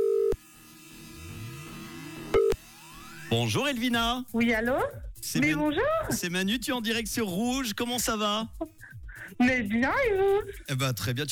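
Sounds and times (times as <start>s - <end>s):
telephone ringback tone on an outgoing call: 0.0s - 0.4s, 2.4s - 2.6s
speech: 3.3s - 11.3s.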